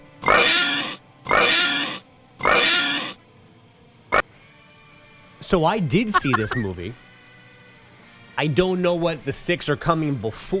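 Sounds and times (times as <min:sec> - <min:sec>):
pig oinking sound effect: 0:00.2 - 0:03.2, 0:06.1 - 0:06.6
speech: 0:05.5 - 0:07.0, 0:08.4 - 0:10.5
laughter: 0:06.1 - 0:06.8.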